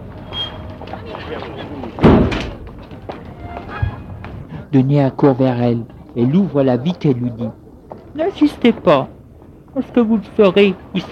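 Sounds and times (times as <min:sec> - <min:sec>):
low murmur: 0:00.0 - 0:11.0
car door slamming shut: 0:02.0 - 0:02.6
speech: 0:04.7 - 0:07.6, 0:08.2 - 0:09.2, 0:09.8 - 0:11.0.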